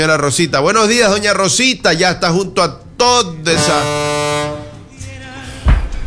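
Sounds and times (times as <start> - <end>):
speech: 0.0 - 4.6
bus horn honking: 3.3 - 5.4.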